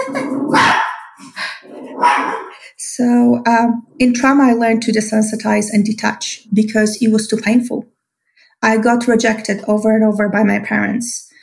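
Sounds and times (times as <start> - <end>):
dog barking: 0.1 - 1.2, 1.9 - 2.6
speech: 3.0 - 8.0, 8.6 - 11.3.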